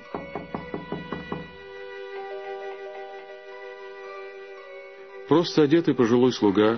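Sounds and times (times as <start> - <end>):
knocking on a front door: 0.0 - 1.6
soft sustained musical tones: 1.4 - 6.7
speech: 5.3 - 6.7.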